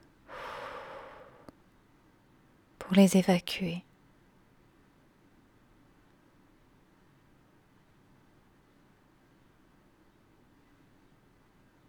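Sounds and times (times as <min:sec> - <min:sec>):
slow exhale during guided meditation: 0:00.3 - 0:01.5
speech: 0:02.9 - 0:03.9.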